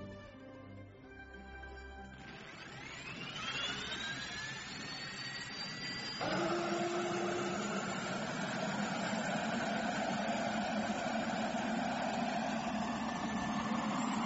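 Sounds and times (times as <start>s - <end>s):
jet aircraft engines roaring during takeoff: 2.3s - 6.3s, 7.1s - 14.2s.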